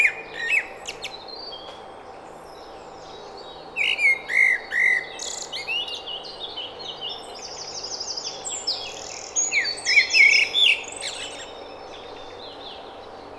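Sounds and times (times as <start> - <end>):
Common blackbird Turdus merula song: 0.0 - 13.3.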